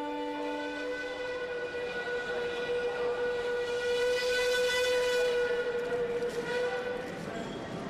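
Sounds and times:
train whistle at a station: 0.2 - 7.7.

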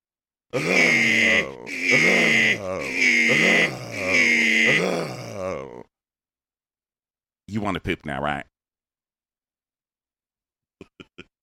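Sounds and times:
speech: 0.5 - 5.9, 7.5 - 8.5
voices imitating the grunts of two people hugging very hard: 0.5 - 5.9.

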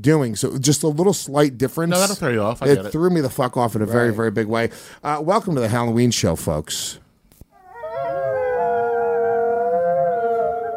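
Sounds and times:
speech: 0.0 - 7.0
several wolves howling together: 7.6 - 10.7.

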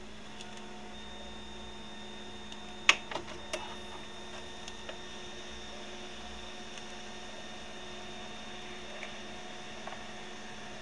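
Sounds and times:
old laser printer humming and whirring: 0.0 - 10.8
old laser printer clicks and clunks: 2.8 - 5.0.

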